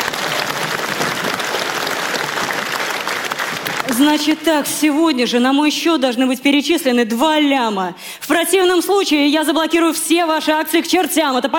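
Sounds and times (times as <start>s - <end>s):
studio audience applause: 0.0s - 4.4s
speech: 3.9s - 11.5s.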